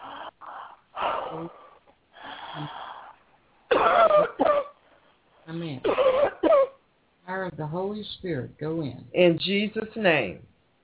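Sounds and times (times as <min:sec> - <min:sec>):
strained breathing: 0:00.0 - 0:03.3
speech: 0:01.3 - 0:01.6, 0:02.6 - 0:02.8, 0:05.5 - 0:06.3, 0:07.4 - 0:10.5
person coughing in harsh wheezy bursts: 0:03.7 - 0:04.8, 0:05.8 - 0:06.8.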